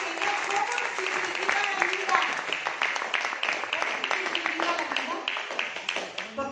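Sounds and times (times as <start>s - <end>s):
audience clapping: 0.0s - 6.4s.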